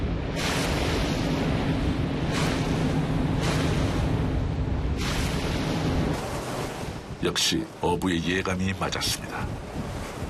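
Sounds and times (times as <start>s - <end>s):
fishing boat engine roar: 0.0s - 8.2s
rushing water from a fishing boat on choppy sea: 0.0s - 10.2s
spray bursts and wave slaps on choppy sea: 0.0s - 10.2s
speech: 7.3s - 9.6s.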